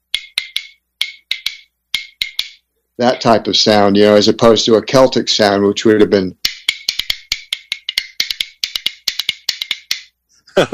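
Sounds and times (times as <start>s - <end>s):
bones played to mimic a snare drum: 0.0s - 2.7s, 6.4s - 10.2s
speech: 3.0s - 6.4s, 10.6s - 10.7s.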